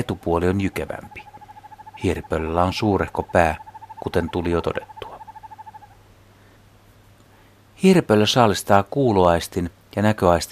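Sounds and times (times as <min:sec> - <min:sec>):
speech: 0:00.0 - 0:01.3, 0:02.0 - 0:05.0, 0:07.8 - 0:10.4
northern hawk owl giving a bubbling whistled trill: 0:00.0 - 0:06.0
low steady hum: 0:00.0 - 0:07.8.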